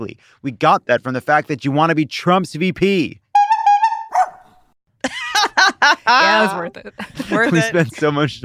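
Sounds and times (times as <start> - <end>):
speech: 0.0 - 3.2, 6.1 - 8.4
dog barking and yelping: 4.1 - 4.5
laughter: 5.0 - 8.4.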